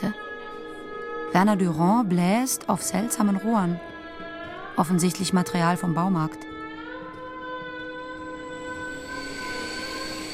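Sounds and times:
speech: 1.3s - 3.9s, 4.8s - 6.5s
train pulling in with brakes screeching: 8.2s - 10.3s.

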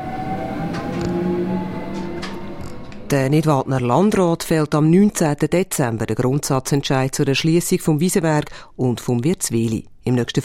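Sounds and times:
small cable car running up a mountain humming: 0.0s - 4.9s
speech: 3.1s - 10.4s.

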